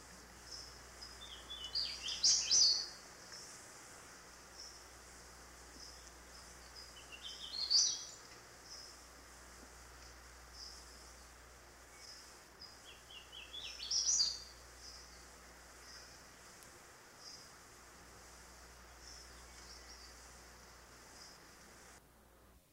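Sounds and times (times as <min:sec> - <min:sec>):
steady low hum: 0:00.0 - 0:22.7
hooded warbler singing bright whistled phrases: 0:00.1 - 0:03.6, 0:04.4 - 0:09.2, 0:10.3 - 0:21.5.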